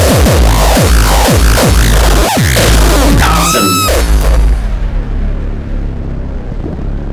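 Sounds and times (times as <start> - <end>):
distorted drum machine kicks with a falling pitch: 0.0 - 5.0
dense buzzing noisy drum machine percussion: 0.0 - 7.1.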